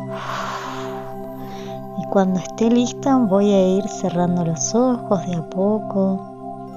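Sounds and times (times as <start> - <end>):
deep breath in and out: 0.0 - 2.0
soft sustained music tones: 0.0 - 6.7
speech: 2.1 - 6.3.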